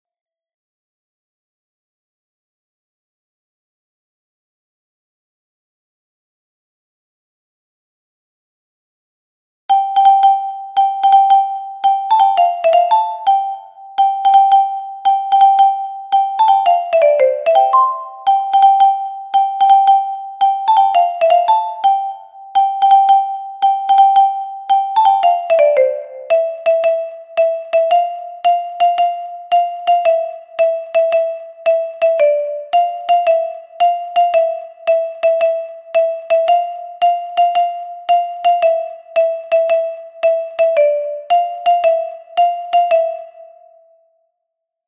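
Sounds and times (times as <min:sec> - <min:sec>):
soprano xylophone playing a Galician muineira: 0:09.7 - 0:43.8.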